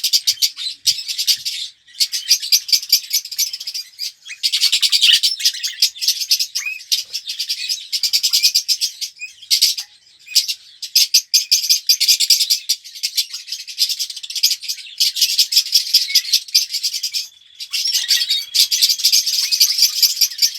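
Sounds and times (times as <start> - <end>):
red-rumped parrot Psephotus haematonotus song of sharp chirping and rattling trills: 0.0 - 20.5.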